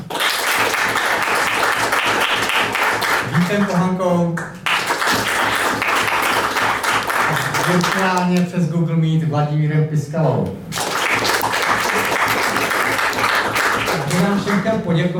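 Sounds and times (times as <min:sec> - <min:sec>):
audience applause: 0:00.0 - 0:03.8, 0:04.6 - 0:08.3, 0:10.7 - 0:14.5
speech: 0:03.4 - 0:04.5, 0:07.7 - 0:10.8, 0:14.2 - 0:15.1.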